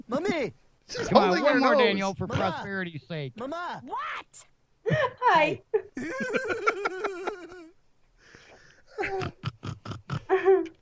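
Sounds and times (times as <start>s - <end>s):
speech: 0.1s - 7.2s, 9.0s - 9.4s
laughter: 1.0s - 3.3s, 4.9s - 7.7s
faint breathy sound: 8.2s - 9.0s
woman snorting like a pig: 9.0s - 10.3s.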